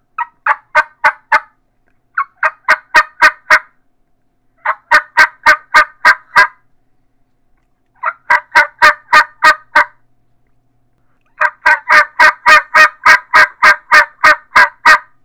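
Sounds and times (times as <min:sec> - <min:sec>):
turkey smackdown yelps: 0:00.2 - 0:01.5, 0:02.2 - 0:03.7, 0:04.6 - 0:06.6, 0:08.0 - 0:10.0, 0:11.3 - 0:15.2.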